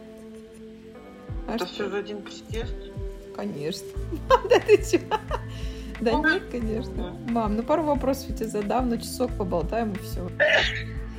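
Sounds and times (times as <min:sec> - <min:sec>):
speech: 0:01.5 - 0:11.0
laughter: 0:04.1 - 0:05.6
mother sneezing: 0:10.4 - 0:10.8.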